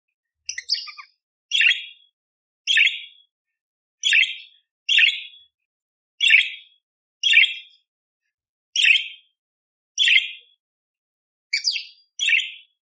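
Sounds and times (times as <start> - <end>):
budgerigar buzzy scratchy chirping: 0.5 - 2.0, 2.7 - 3.1, 4.0 - 5.4, 6.2 - 6.6, 7.2 - 7.7, 11.6 - 12.6.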